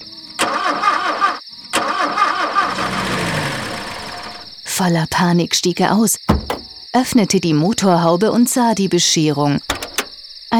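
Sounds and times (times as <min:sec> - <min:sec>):
red car engine cranking without starting: 0:00.4 - 0:04.6, 0:06.3 - 0:06.9
speech: 0:04.8 - 0:09.8.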